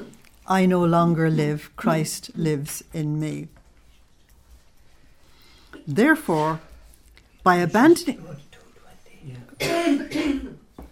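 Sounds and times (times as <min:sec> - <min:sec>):
speech: 0:00.5 - 0:03.6, 0:05.9 - 0:06.7, 0:07.4 - 0:08.4, 0:09.2 - 0:10.4
person coughing in a room: 0:09.6 - 0:10.7.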